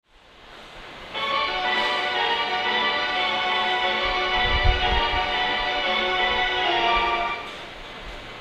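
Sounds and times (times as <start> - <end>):
station melody: 1.1 - 7.6.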